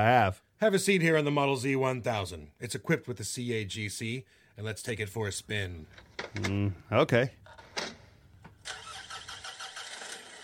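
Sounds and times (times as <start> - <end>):
speech: 0.0 - 7.4
engine cranking, starting and idling: 8.6 - 10.4.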